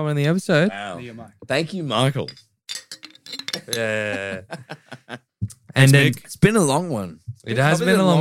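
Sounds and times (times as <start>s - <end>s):
speech: 0.0s - 2.5s, 3.7s - 5.2s, 5.8s - 8.1s
glasses clinking in a toast: 2.2s - 4.3s
laughter: 3.6s - 5.3s.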